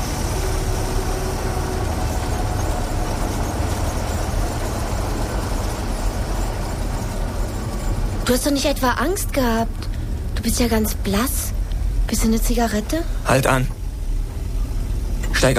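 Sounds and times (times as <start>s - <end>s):
car engine roaring as the car races much too fast: 0.0s - 15.5s
speech: 8.3s - 13.8s, 15.4s - 15.5s.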